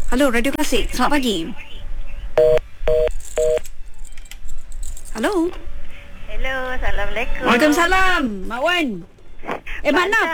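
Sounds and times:
speech: 0:00.1 - 0:01.7, 0:05.2 - 0:05.7, 0:06.4 - 0:10.3
touch-tone beeps of a telephone number being dialed: 0:02.4 - 0:03.6.

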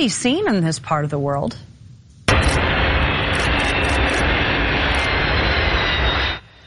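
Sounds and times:
speech: 0:00.0 - 0:01.7
faint whine of cargo aircraft engines: 0:01.4 - 0:06.6
Antonov 124 cargo aircraft engines roaring while landing: 0:02.3 - 0:06.6.

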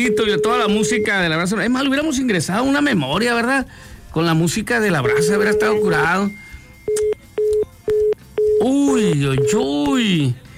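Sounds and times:
telephone tones as a call to a contest participant is redialed: 0:00.0 - 0:01.5, 0:05.0 - 0:09.9
speech: 0:00.0 - 0:07.2, 0:08.6 - 0:10.4.

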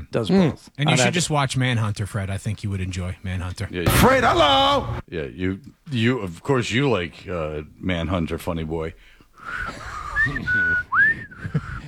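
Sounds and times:
speech: 0:00.1 - 0:11.6
person attempting to whistle with breathy sputters: 0:09.5 - 0:11.8.

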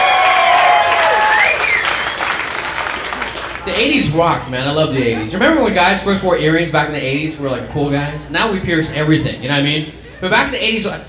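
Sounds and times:
whistles from the crowd: 0:00.0 - 0:02.6
audience applause: 0:00.0 - 0:03.7
speech: 0:04.2 - 0:11.0.

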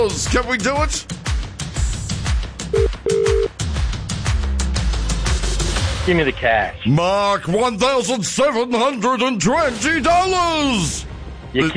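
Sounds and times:
speech: 0:00.0 - 0:01.3, 0:06.1 - 0:11.7
busy rhythmic bed: 0:00.0 - 0:06.3
telephone ringback tone: 0:02.7 - 0:03.5.

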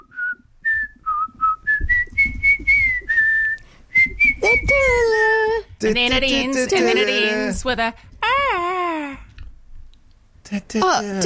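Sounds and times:
person whistling a familiar melody: 0:00.0 - 0:04.8
speech: 0:05.8 - 0:08.6, 0:10.5 - 0:11.2.

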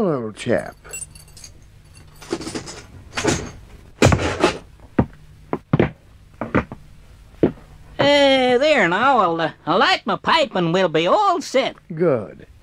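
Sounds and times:
speech: 0:00.0 - 0:01.0, 0:08.1 - 0:12.5
wooden chair carried and set down into a cell: 0:02.2 - 0:04.7, 0:05.5 - 0:06.8.

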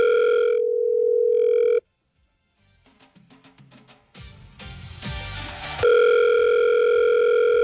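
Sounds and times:
telephone dial tone on an international call from Porto Alegre: 0:00.0 - 0:01.8, 0:05.8 - 0:07.6.

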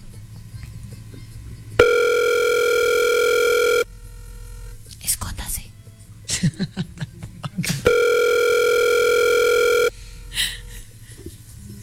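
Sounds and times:
steady telephone tone while placing a call: 0:01.8 - 0:03.9, 0:07.9 - 0:09.9
laughter: 0:06.3 - 0:08.3.

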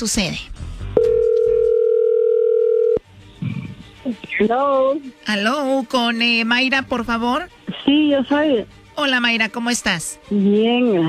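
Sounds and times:
speech: 0:00.0 - 0:01.1, 0:04.1 - 0:11.0
telephone dial tone: 0:01.0 - 0:03.0.

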